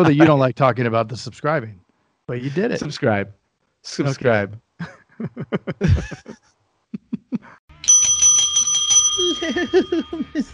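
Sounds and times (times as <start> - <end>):
laughter: 0.0 - 0.4, 4.8 - 7.6, 9.3 - 10.5
speech: 0.0 - 6.5, 9.2 - 10.5
bright sustained bell ringing: 7.7 - 10.5.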